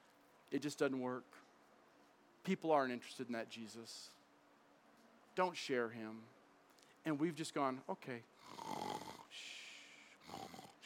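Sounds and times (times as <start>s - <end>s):
speech: 0.5s - 1.5s, 2.4s - 4.2s, 5.4s - 6.4s, 7.0s - 9.5s
person snoring: 8.4s - 10.8s.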